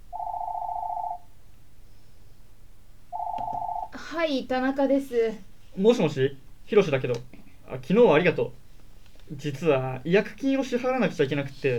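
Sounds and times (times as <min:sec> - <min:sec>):
home telephone ringing: 0:00.1 - 0:01.3, 0:03.1 - 0:04.0
speech: 0:04.1 - 0:08.6, 0:09.3 - 0:11.7.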